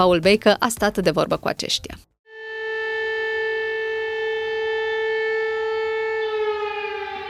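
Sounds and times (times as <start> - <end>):
speech: 0.0 - 2.1
civil defense warning siren wailing: 2.3 - 7.2.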